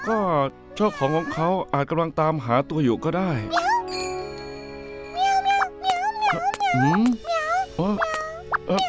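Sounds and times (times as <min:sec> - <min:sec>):
speech: 0:00.0 - 0:03.7, 0:06.3 - 0:08.8
hungry kitten giving high-pitched mews: 0:05.2 - 0:08.8.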